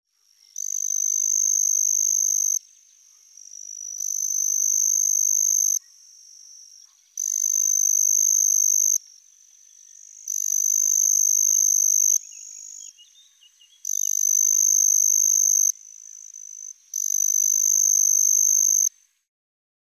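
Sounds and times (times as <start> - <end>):
Pteronemobius heydenii chirping: 0.2 - 19.2.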